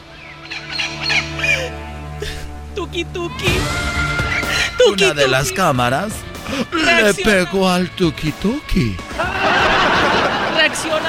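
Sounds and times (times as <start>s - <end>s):
injured parakeet squawking: 0.1s - 1.9s, 4.1s - 6.0s
speech: 2.9s - 4.0s, 4.8s - 9.1s
laughter: 8.8s - 11.0s.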